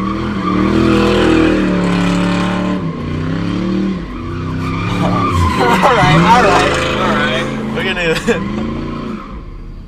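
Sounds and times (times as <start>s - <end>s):
car engine revving while doing donuts: 0.0s - 9.8s
tires screeching and skidding: 0.0s - 9.8s
faint voices: 4.9s - 7.9s.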